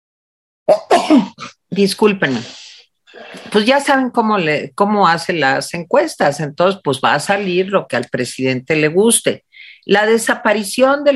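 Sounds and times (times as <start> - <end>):
person sneezing: 0.7 - 1.6, 2.3 - 3.6
speech: 0.7 - 2.6, 3.2 - 11.1.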